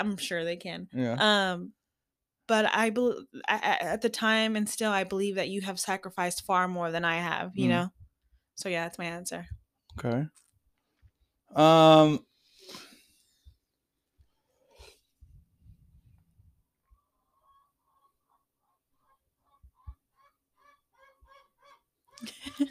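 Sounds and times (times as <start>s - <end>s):
speech: 0.0s - 1.8s, 2.5s - 8.0s, 8.6s - 10.4s, 11.5s - 12.8s
chicken calling: 16.8s - 22.2s.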